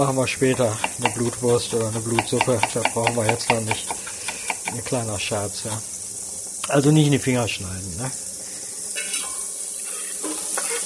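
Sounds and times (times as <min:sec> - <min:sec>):
speech: 0:00.0 - 0:04.0, 0:04.7 - 0:05.9, 0:06.7 - 0:08.3
onions sautéing in a pan: 0:00.0 - 0:10.8
stirring scrapes and clinks: 0:00.4 - 0:04.9, 0:09.0 - 0:10.8.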